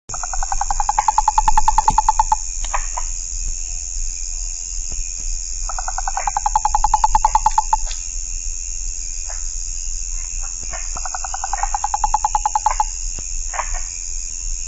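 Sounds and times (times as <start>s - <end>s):
Rana psaltes frog calling in pulsed trills: 0.1s - 3.2s, 5.6s - 8.0s, 10.4s - 14.0s
high insect drone: 0.1s - 14.6s.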